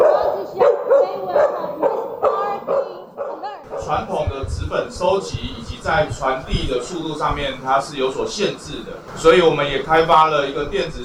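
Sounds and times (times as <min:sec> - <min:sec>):
search-and-rescue dog barking: 0:00.0 - 0:04.3
speech: 0:03.9 - 0:11.0.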